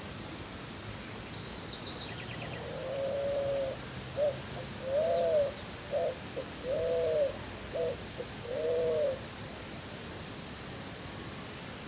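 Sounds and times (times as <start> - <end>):
background hiss: 0.0 - 11.8
spot-winged pigeon cooing: 2.6 - 9.2.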